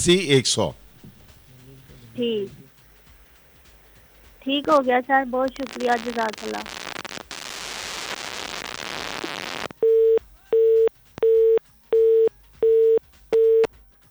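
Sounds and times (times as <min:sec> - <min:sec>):
speech: 0:00.0 - 0:00.8, 0:02.2 - 0:02.6, 0:04.4 - 0:06.8
telephone-line static: 0:04.6 - 0:13.7
telephone busy tone: 0:09.8 - 0:13.7.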